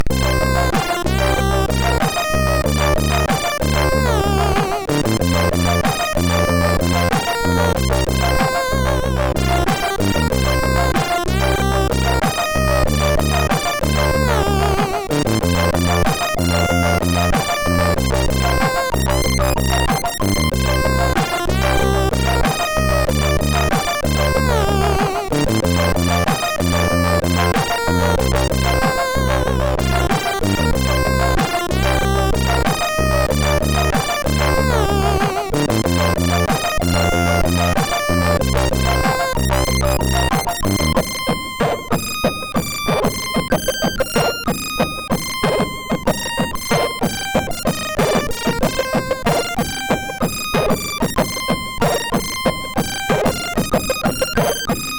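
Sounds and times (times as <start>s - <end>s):
MOS6581R4 sound chip music: 0.0s - 54.9s.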